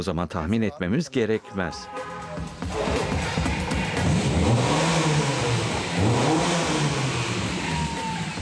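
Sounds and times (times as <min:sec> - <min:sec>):
speech: 0:00.0 - 0:03.0
Golf GTI car engine revving: 0:02.5 - 0:08.4.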